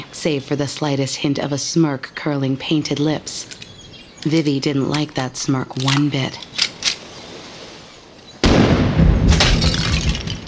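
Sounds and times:
speech: 0:00.2 - 0:03.6, 0:04.2 - 0:06.6
faint clicks: 0:02.9 - 0:07.0
loud gunshot echoing off ocean cliffs: 0:08.4 - 0:10.4
ceramic dummy shattering, porcelain fragments tinkling: 0:09.3 - 0:10.4.

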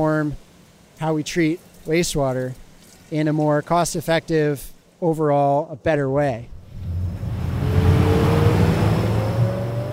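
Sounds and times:
speech: 0:00.0 - 0:06.5
small motorboat engine droning while speeding along the Willamette River: 0:06.6 - 0:09.9.

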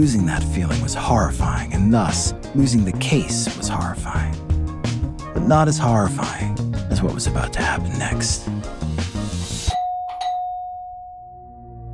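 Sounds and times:
speech: 0:00.0 - 0:04.5, 0:05.4 - 0:08.8
music: 0:00.0 - 0:09.8, 0:11.4 - 0:11.9
apartment doorbell chiming two tones: 0:09.7 - 0:11.8.

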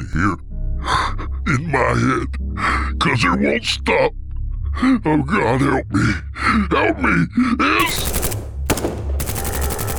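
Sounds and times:
speech: 0:00.1 - 0:00.5, 0:01.5 - 0:04.2, 0:04.8 - 0:08.2
automatic gunfire in a lobby: 0:07.8 - 0:09.9.

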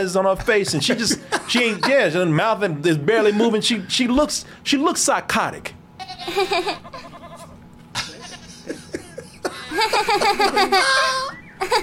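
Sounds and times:
speech: 0:00.0 - 0:06.9, 0:09.8 - 0:11.8
laughter: 0:00.4 - 0:02.3, 0:06.2 - 0:07.2, 0:08.0 - 0:11.8
sheep bleating in a movie clip: 0:06.8 - 0:08.6.

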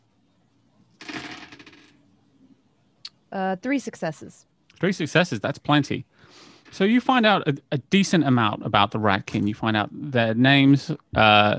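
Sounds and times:
handful of dice clattering on a hard table: 0:01.1 - 0:02.0
speech: 0:03.3 - 0:11.5.

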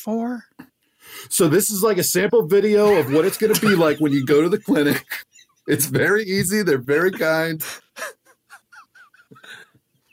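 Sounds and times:
speech: 0:00.0 - 0:08.2
laughter: 0:02.7 - 0:09.7
birds calling: 0:02.9 - 0:06.2.

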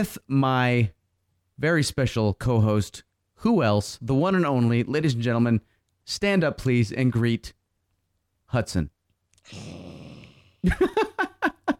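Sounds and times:
speech: 0:00.0 - 0:01.0, 0:01.6 - 0:07.6, 0:08.5 - 0:11.3
child imitating a lion growl as a hello: 0:09.5 - 0:10.6.

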